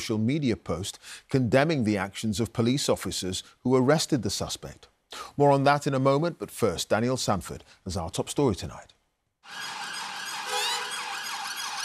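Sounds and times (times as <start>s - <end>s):
speech: 0.0s - 9.8s
police convoy sirens wailing: 10.3s - 11.8s.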